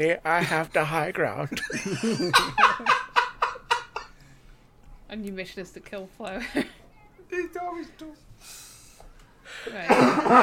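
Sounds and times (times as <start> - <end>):
speech: 0.0 - 3.0, 5.1 - 8.7, 9.5 - 10.4
laughter: 1.5 - 4.1
raspy coughing: 9.7 - 10.4.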